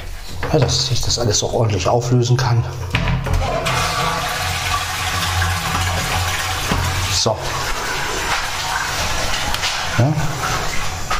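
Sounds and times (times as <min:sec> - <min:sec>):
speech: 0:00.5 - 0:03.6, 0:07.2 - 0:07.8
toilet flushing: 0:03.2 - 0:11.1.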